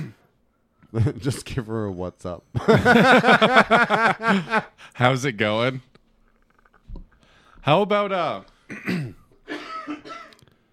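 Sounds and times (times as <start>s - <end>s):
speech: 0.9s - 5.9s, 7.6s - 9.2s
laughter: 2.6s - 4.8s
rough raspy coughing: 8.7s - 10.5s.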